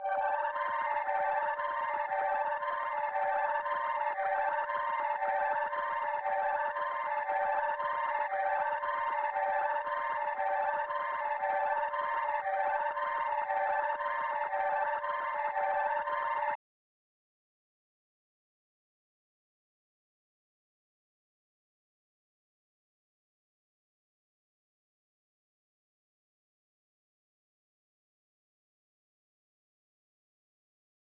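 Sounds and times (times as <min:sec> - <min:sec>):
116 BPM G minor high arpeggio loop: 0:00.0 - 0:16.5.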